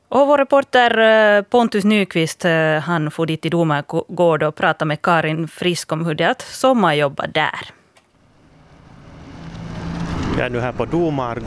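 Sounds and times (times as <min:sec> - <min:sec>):
speech: 0:00.1 - 0:07.8, 0:10.4 - 0:11.4
car engine humming arriving at a waste disposal site: 0:08.1 - 0:11.4
tire noise: 0:08.1 - 0:11.4.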